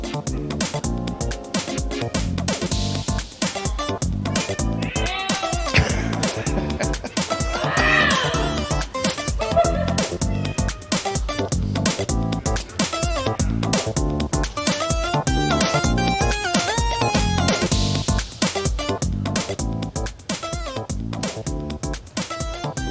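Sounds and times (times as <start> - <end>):
dense busy continuous sound: 0.0 - 22.8
laughter: 3.5 - 17.6
loud drawn-out cat meows: 4.3 - 5.9, 7.5 - 11.4.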